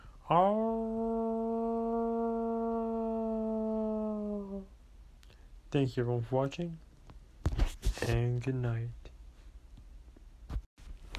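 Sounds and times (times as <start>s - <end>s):
speech: 0.3s - 1.0s, 5.7s - 6.8s, 8.0s - 9.0s
people imitating a wolf howl: 0.5s - 4.7s.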